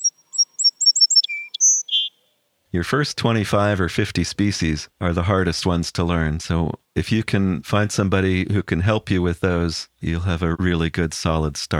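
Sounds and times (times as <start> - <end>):
song sparrow singing: 0.0 - 2.4
speech: 2.8 - 11.7.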